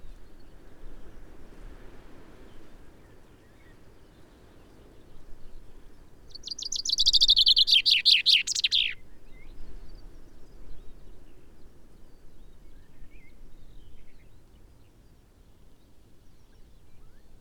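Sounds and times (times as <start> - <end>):
common chaffinch Fringilla coelebs singing: 6.3 - 9.0.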